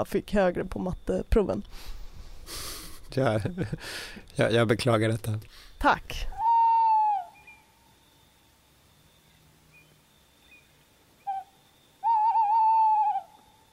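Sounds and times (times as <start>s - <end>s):
speech: 0.0s - 6.4s
laughter: 2.5s - 3.9s
tawny owl hooting: 6.3s - 8.4s, 9.2s - 13.7s.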